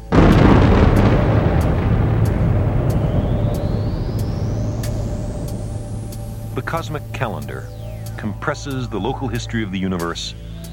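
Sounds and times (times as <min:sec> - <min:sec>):
massive explosion sound effect with deep rumbling roar: 0:00.0 - 0:08.3
speech: 0:06.6 - 0:10.5.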